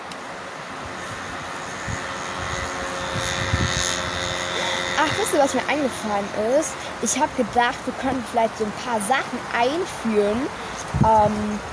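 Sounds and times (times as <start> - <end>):
motorcycle engine droning as it passes: 0.7 - 8.6
speech: 5.0 - 11.7.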